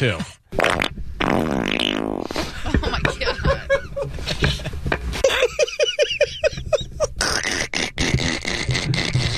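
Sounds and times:
speech: 0.0 - 0.8
loud fart: 0.5 - 2.5, 7.2 - 9.3
man laughing breathily: 2.4 - 7.2.

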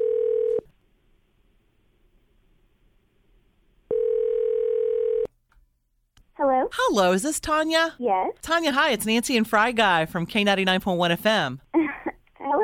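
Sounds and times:
telephone ringback tone over the line: 0.0 - 0.6, 3.9 - 5.3
speech: 6.7 - 11.8.

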